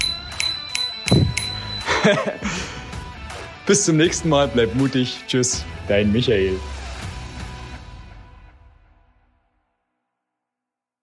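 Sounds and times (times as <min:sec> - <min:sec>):
bicycle bell ringing: 0:00.0 - 0:02.4
laughter: 0:01.8 - 0:02.9
speech: 0:02.1 - 0:02.7, 0:03.7 - 0:06.7.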